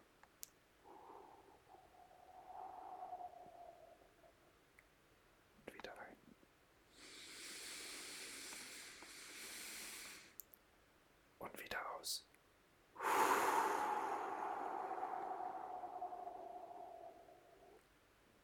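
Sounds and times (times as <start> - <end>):
slow deep breathing close to the microphone: 0.8 - 4.5, 6.9 - 10.4, 13.0 - 17.8.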